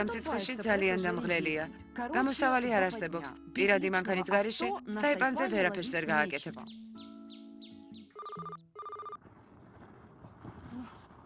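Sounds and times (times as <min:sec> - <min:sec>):
speech: 0:00.0 - 0:06.9
softer tonal chirps: 0:06.6 - 0:09.2
telephone ringing: 0:08.1 - 0:09.2.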